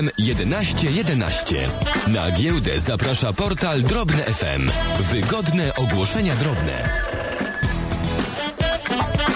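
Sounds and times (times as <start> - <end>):
speech: 0.0 - 7.1
busy jingle-like musical backing: 0.0 - 9.3
telephone ringing in short rapid bell-like bursts: 5.4 - 7.8.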